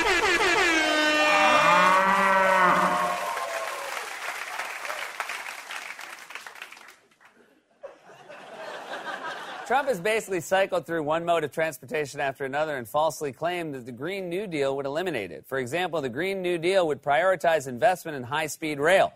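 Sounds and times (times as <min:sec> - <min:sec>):
cow mooing: 0:00.8 - 0:03.5
audience applause: 0:01.2 - 0:07.4
audience laughter: 0:07.4 - 0:09.8
speech: 0:09.8 - 0:19.1.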